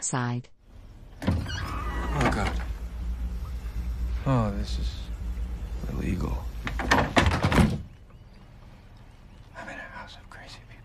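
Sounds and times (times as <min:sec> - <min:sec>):
speech: 0:00.0 - 0:00.6, 0:02.2 - 0:02.6, 0:04.2 - 0:05.1, 0:05.8 - 0:07.0
door being opened tentatively at a house: 0:01.1 - 0:03.5, 0:06.6 - 0:08.0.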